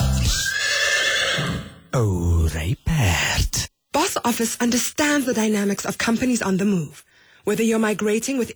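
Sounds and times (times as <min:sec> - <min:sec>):
horse neighing with a long shuddering whinny: 0:00.2 - 0:02.0
speech: 0:02.0 - 0:02.8, 0:04.2 - 0:08.5.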